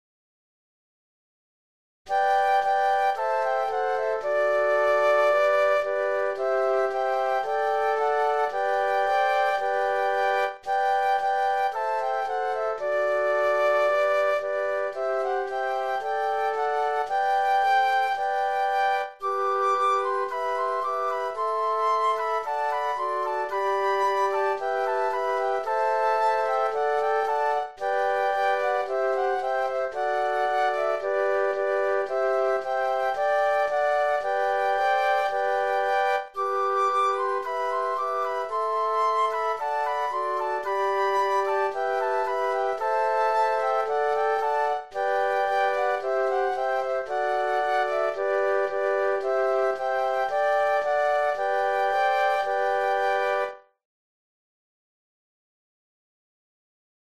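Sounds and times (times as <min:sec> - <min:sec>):
flute quartet playing Christmas music: 0:02.1 - 0:53.6.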